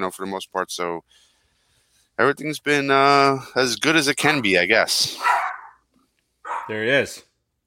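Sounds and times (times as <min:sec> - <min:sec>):
speech: 0:00.0 - 0:01.3, 0:02.2 - 0:05.4, 0:06.7 - 0:07.3
dog barking: 0:05.2 - 0:05.8, 0:06.4 - 0:06.8.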